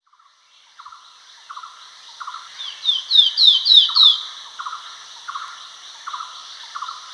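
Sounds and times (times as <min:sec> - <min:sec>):
great iora downslurred whistles: 0:02.7 - 0:04.2.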